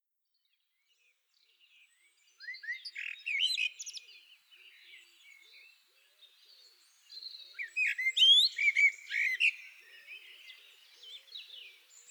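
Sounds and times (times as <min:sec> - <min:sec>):
common blackbird Turdus merula singing fluty whistles and twittering: 0:02.4 - 0:05.6, 0:07.5 - 0:12.0.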